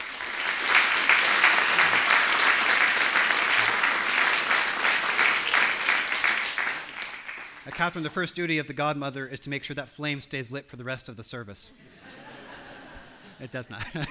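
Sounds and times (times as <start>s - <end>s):
audience applauding after a baptism: 0.0s - 8.0s
speech: 7.8s - 12.2s, 13.4s - 14.0s
laughter: 11.8s - 14.0s.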